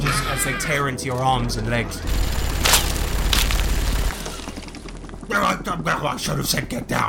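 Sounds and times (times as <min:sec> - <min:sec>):
speech: 0:00.4 - 0:02.4, 0:05.3 - 0:07.0
loud burst of rapid machine gun fire with booming rumble: 0:02.1 - 0:04.8.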